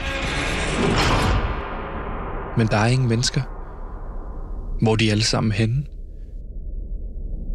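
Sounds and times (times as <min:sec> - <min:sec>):
door bursting open: 0:00.0 - 0:02.6
dense noise: 0:00.0 - 0:07.5
speech: 0:02.6 - 0:03.6, 0:04.8 - 0:05.9.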